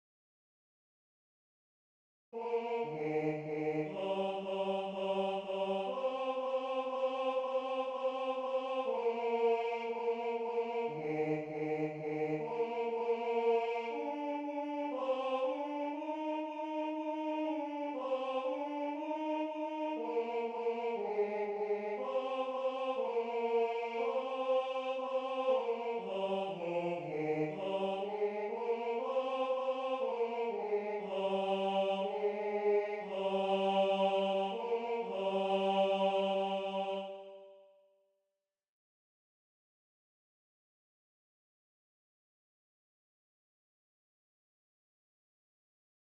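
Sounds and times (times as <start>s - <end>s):
bass tenore singing: 2.4s - 37.2s.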